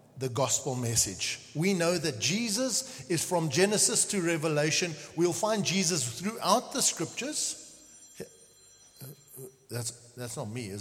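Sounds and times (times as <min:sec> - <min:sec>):
speech: 0:00.2 - 0:07.6, 0:09.7 - 0:10.7
mobile phone ringing: 0:07.8 - 0:09.5.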